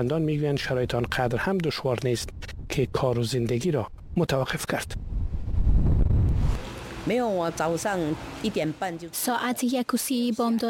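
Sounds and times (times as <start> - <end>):
speech: 0.0 - 5.0, 7.0 - 10.6
strong typhoon wind at 100 km/h in Taipei Taiwan buffeting the microphone: 0.6 - 3.2, 3.8 - 6.6.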